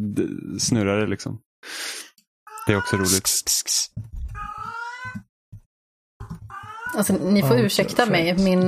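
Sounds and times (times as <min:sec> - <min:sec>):
speech: 0:00.1 - 0:04.2, 0:06.9 - 0:08.6
cat in heat yowling: 0:02.5 - 0:03.2, 0:04.3 - 0:05.2, 0:06.2 - 0:07.2.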